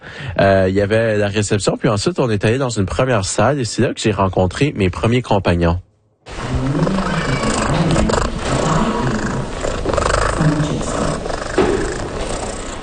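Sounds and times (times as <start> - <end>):
speech: 0.4 - 5.9
cat purring: 6.4 - 12.8.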